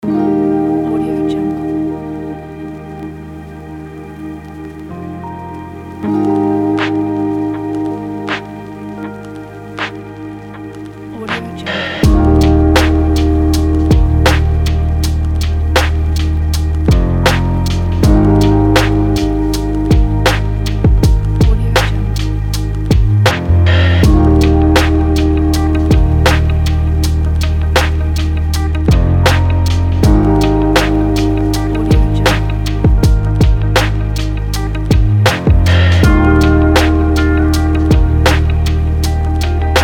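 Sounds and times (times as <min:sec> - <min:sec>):
chill lo-fi hip hop music: 0:00.0 - 0:39.8.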